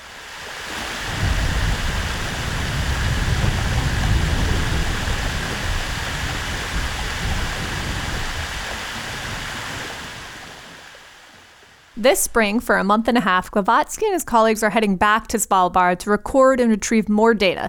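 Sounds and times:
glacier ice breaking off underwater and surging to the surface: 0:00.0 - 0:11.8
speech: 0:12.0 - 0:17.6.

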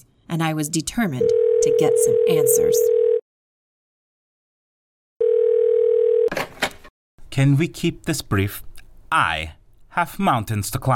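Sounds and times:
speech: 0:00.3 - 0:03.0, 0:07.4 - 0:10.9
telephone dial tone as a phone call is placed: 0:01.2 - 0:03.2, 0:05.2 - 0:06.3.

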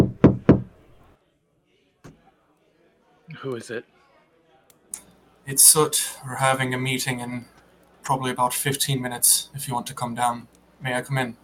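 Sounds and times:
light knocking on a door: 0:00.0 - 0:00.8
speech: 0:03.4 - 0:04.0, 0:05.5 - 0:11.4.

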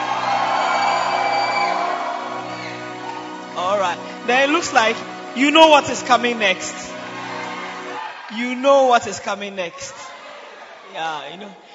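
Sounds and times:
audience shouting and whooping with excitement: 0:00.0 - 0:03.6, 0:07.0 - 0:08.5
speech: 0:04.3 - 0:06.8, 0:08.3 - 0:10.0, 0:10.9 - 0:11.6.

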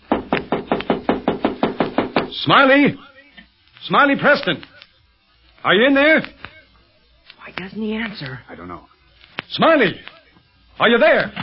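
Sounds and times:
knocking on a door: 0:00.1 - 0:02.3
speech: 0:02.4 - 0:03.1, 0:03.8 - 0:04.7, 0:05.6 - 0:06.4, 0:07.5 - 0:08.9, 0:09.5 - 0:10.2, 0:10.8 - 0:11.4.

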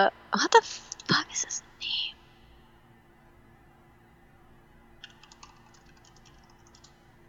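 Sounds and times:
speech: 0:00.0 - 0:02.1
steady low hum: 0:00.0 - 0:07.2
clacky keystrokes on a mechanical keyboard: 0:05.0 - 0:07.0.

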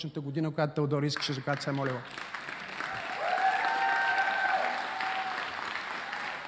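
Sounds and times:
speech: 0:00.0 - 0:02.4
audience applause: 0:01.5 - 0:06.4.

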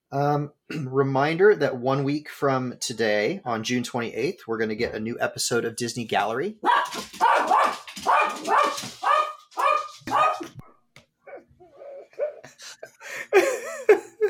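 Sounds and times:
speech: 0:00.1 - 0:09.1
dog barking excitedly: 0:06.6 - 0:10.5.

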